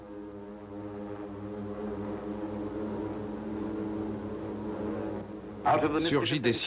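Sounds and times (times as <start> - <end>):
propeller aircraft engine droning with a deep harmonic hum: 0.0 - 6.6
speech: 5.6 - 6.6.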